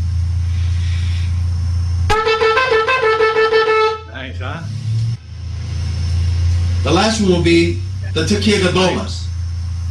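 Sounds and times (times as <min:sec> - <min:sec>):
low room hum: 0:00.0 - 0:09.9
shofar teruah short broken blasts: 0:02.1 - 0:04.1
speech: 0:06.9 - 0:09.3.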